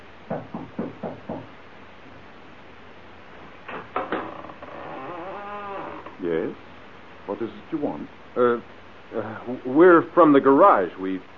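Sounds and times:
knocking on the wooden door of an old house: 0.3 - 1.6
speech: 7.4 - 11.3.

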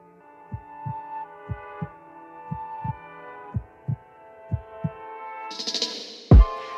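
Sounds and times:
low regular heartbeat thumps: 0.5 - 1.9, 2.5 - 5.0, 6.3 - 6.5.

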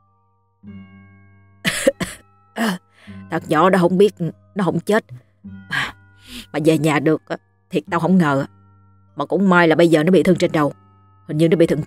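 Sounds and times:
speech: 0.6 - 1.2, 1.8 - 8.6, 9.2 - 11.8
man lying on a boat at night coughing dryly while smoking: 1.7 - 2.2.

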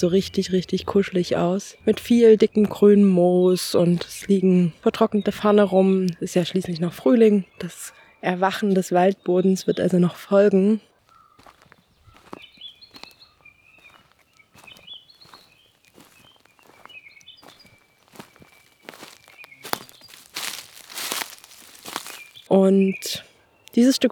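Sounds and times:
speech: 0.0 - 10.9, 22.5 - 24.0
birds chirping in a spring forest: 0.0 - 24.0
footsteps crunching through undergrowth on moss and dried ferns: 11.0 - 22.5.

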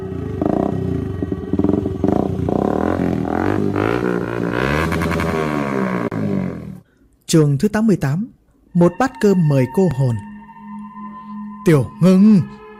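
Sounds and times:
motorcycle engine approaching and revving: 0.0 - 6.8
speech: 7.3 - 10.3, 11.6 - 12.6.

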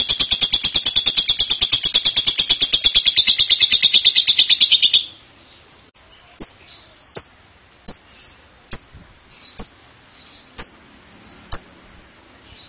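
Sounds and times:
lovebird rattling chatter: 0.0 - 4.6
lovebird high clipped chirps: 0.0 - 5.2, 6.3 - 11.9.

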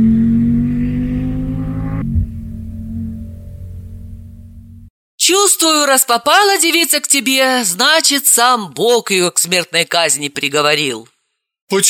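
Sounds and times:
car engine roaring while accelerating to overtake: 0.0 - 4.9
speech: 5.8 - 11.1, 11.7 - 11.8.

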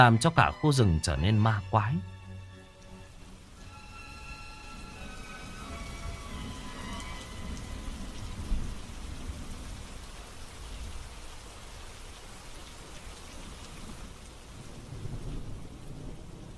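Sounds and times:
speech: 0.0 - 2.1
heavy rain pouring through a forest: 0.0 - 16.5
rumbling thunder: 4.7 - 11.0, 14.6 - 16.5.

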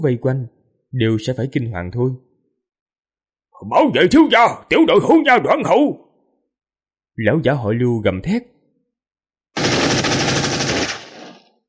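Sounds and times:
speech: 0.0 - 2.3, 3.6 - 6.0, 7.2 - 8.5
machine gun firing in a burst: 9.6 - 11.6.

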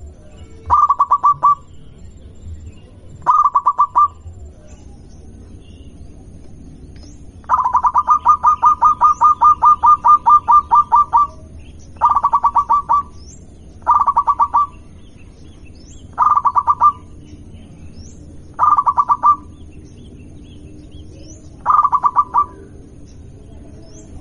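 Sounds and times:
zebra dove of a local strain cooing: 0.0 - 1.7, 3.2 - 4.8, 7.4 - 13.2, 13.8 - 14.9, 16.0 - 17.2, 18.6 - 19.6, 21.1 - 22.8
steady low rumble: 0.0 - 24.1.

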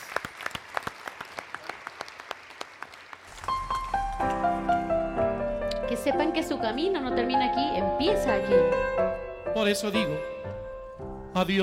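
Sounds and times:
audience applause for graduates at a gala concert: 0.0 - 4.2
music at a gala concert: 3.5 - 11.6
speech: 6.0 - 10.3, 11.4 - 11.6.

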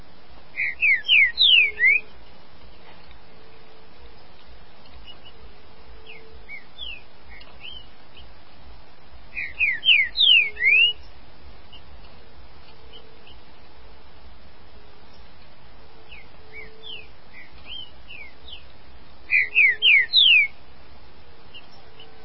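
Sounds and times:
green-winged saltator whistling song: 0.6 - 2.1, 6.0 - 8.3, 9.3 - 11.1, 16.1 - 18.7, 19.3 - 20.6.

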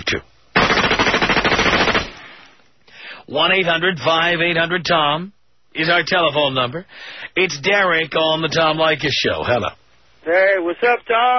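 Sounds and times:
speech: 0.1 - 0.3, 3.3 - 11.3
machine gun blast sound effect: 0.6 - 2.5.

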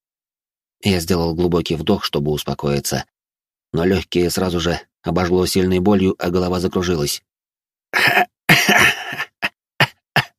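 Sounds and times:
speech: 0.8 - 7.3, 7.9 - 8.9
person coughing in a harsh fit: 8.0 - 10.3.

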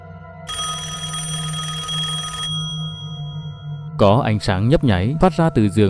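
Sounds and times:
electronic telephone ringing at night: 0.5 - 3.9
speech: 4.0 - 5.8.

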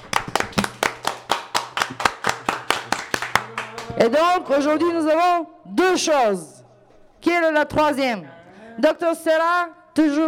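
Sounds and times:
two hands clapping in applause: 0.0 - 4.0
speech: 4.0 - 6.6, 7.2 - 10.2.

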